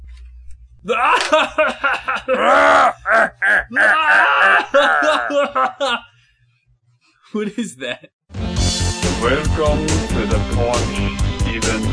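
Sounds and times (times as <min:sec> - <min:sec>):
man groaning and screaming loudly in strained vocal bursts: 0:00.8 - 0:01.4, 0:02.2 - 0:05.7
speech: 0:00.8 - 0:06.1, 0:07.3 - 0:08.1, 0:09.2 - 0:11.8
laughter: 0:00.9 - 0:06.1.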